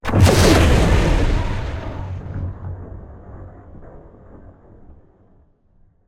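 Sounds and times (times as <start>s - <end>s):
planet explosion: 0.0s - 4.4s.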